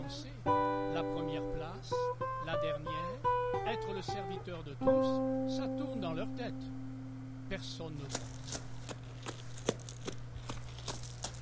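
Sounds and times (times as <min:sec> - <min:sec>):
low constant hum: 0:00.0 - 0:11.4
speech: 0:00.1 - 0:06.8, 0:07.5 - 0:08.7
soft footsteps of a small child passing by: 0:08.1 - 0:11.4.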